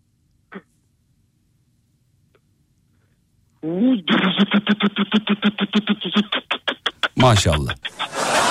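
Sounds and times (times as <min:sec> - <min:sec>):
speech: 0:03.6 - 0:06.4, 0:07.2 - 0:08.4
voice imitating a Hilti hammer drill: 0:07.2 - 0:07.9
laughter: 0:07.2 - 0:08.4.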